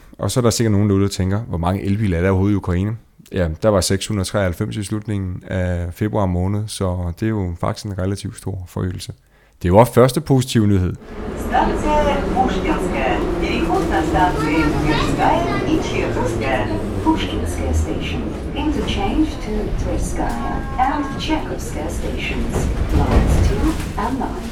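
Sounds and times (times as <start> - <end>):
speech: 0.2 - 12.9, 13.9 - 24.4
loudspeaker announcement in English: 11.0 - 24.4
metro train rumbling through a station: 11.0 - 24.4.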